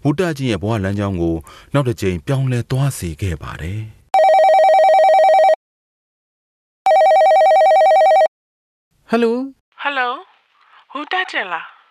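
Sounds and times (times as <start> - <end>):
speech: 0.0 - 4.0, 9.1 - 10.3, 11.0 - 11.8
telephone ringing with trilling warbling electronic tone: 4.2 - 5.6, 6.9 - 8.3.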